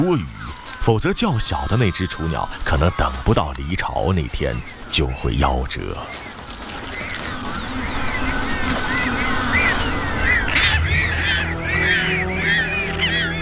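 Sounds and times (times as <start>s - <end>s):
speech: 0.0s - 6.3s
Magellanic penguins braying in a crowded colony in Patagonia: 0.0s - 13.4s
steady noisy wash: 6.1s - 13.4s.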